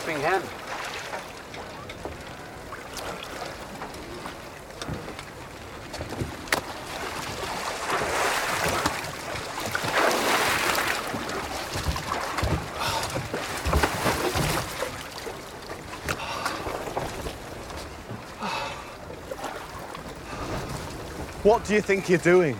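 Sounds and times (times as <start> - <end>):
water sloshing against the hull of a small fishing boat: 0.0 - 22.5
wind gusts: 0.0 - 22.5
speech: 0.1 - 0.7, 21.5 - 22.5
knocks on a small boat: 11.7 - 14.7.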